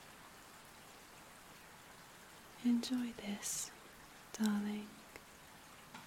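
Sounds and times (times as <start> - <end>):
rain falling: 0.0 - 6.0
speech: 2.6 - 3.8, 4.4 - 5.0.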